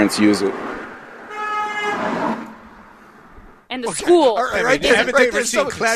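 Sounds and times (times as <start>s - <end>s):
speech: 0.0s - 0.7s, 3.7s - 5.9s
car horn honking: 1.3s - 2.3s.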